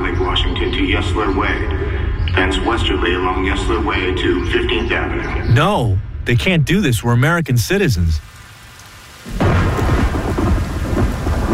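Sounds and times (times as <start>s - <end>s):
speech: 0.7s - 8.4s
loud heavy downpour: 6.7s - 11.5s
deep rolling rumble of thunder: 9.3s - 11.5s.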